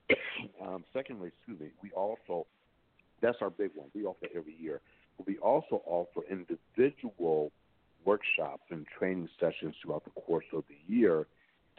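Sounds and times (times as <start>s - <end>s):
sharp throat clearing: 0.1s - 0.8s
speech: 0.8s - 2.6s, 3.2s - 11.7s.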